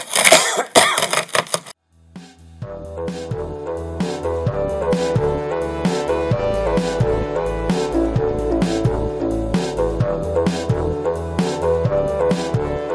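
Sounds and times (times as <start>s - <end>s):
harsh rough coughing: 0.1s - 1.4s
steady music with a low beat: 1.9s - 12.8s.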